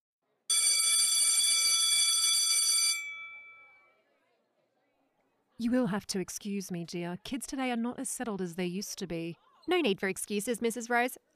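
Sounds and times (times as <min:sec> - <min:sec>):
school bell ringing at a girls high school: 0:00.5 - 0:03.9
speech: 0:05.6 - 0:11.3.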